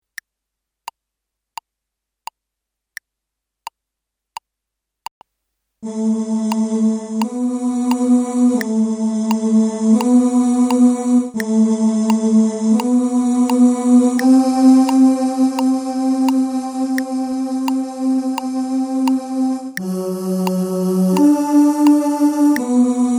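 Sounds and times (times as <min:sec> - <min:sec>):
tenors singing: 0:05.8 - 0:23.1.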